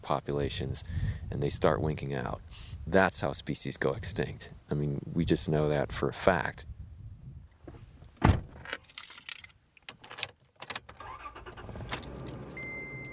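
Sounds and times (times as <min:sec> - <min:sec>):
speech: 0:00.1 - 0:06.7
pickup truck door thumping shut: 0:08.2 - 0:08.6
keys jingling: 0:08.8 - 0:10.6
pickup truck engine starting and idling: 0:10.9 - 0:13.1.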